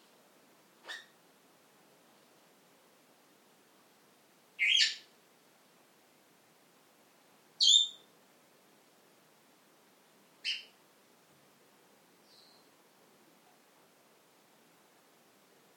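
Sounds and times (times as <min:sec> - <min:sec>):
female pet bird giving bright whistled chirps: 0:04.6 - 0:05.0, 0:07.6 - 0:08.0.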